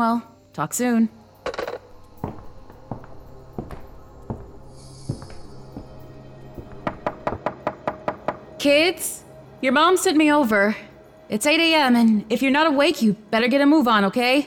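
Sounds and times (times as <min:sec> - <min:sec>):
speech: 0:00.0 - 0:01.2, 0:08.6 - 0:14.4
knocking on a front door: 0:01.5 - 0:08.5.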